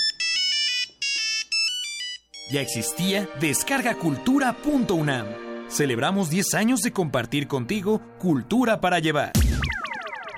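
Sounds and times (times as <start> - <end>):
old mobile phone ringtone: 0.0 - 3.0
speech: 2.5 - 9.6.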